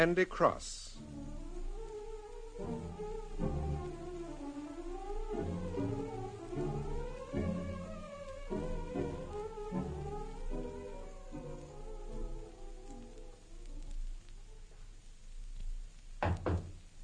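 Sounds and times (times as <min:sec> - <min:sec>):
speech: 0:00.0 - 0:00.9, 0:02.6 - 0:03.6
faint tonal sound: 0:00.8 - 0:15.0
solid knocks on a locked door: 0:16.2 - 0:16.8.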